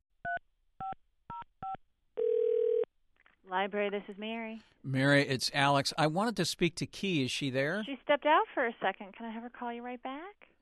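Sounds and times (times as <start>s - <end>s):
telephone line tone ringing through: 2.2s - 2.9s
speech: 3.5s - 10.5s.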